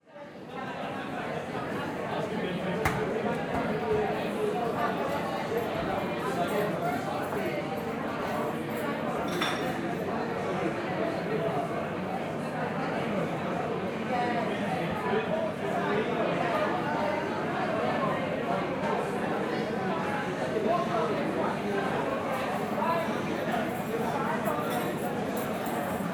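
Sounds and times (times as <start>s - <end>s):
busy large restaurant interior ambience: 0.0s - 26.1s.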